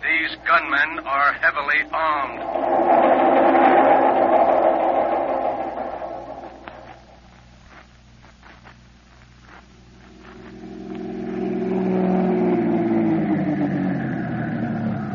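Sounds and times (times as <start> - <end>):
speech: 0.5 - 3.7
black sedan engine driving up and pulling in: 1.8 - 7.2, 10.0 - 15.1.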